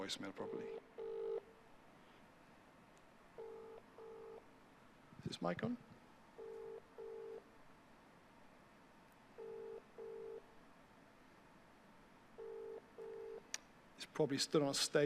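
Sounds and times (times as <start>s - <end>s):
speech: 0.0s - 1.0s, 5.3s - 5.9s, 14.2s - 15.0s
faint hiss: 0.0s - 15.0s
phone ringback tone from an outgoing call in an earpiece: 0.5s - 1.4s, 3.4s - 4.4s, 6.4s - 7.4s, 9.4s - 10.4s, 12.4s - 13.4s.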